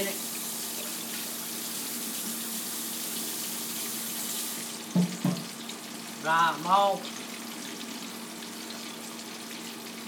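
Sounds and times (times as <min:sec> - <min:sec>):
food frying in a fryer basket: 0:00.0 - 0:10.0
speech: 0:06.3 - 0:07.2.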